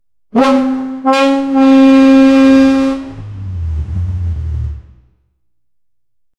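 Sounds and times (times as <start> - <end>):
short truck horn honk: 0.3 - 3.6
truck engine roaring: 0.3 - 5.5.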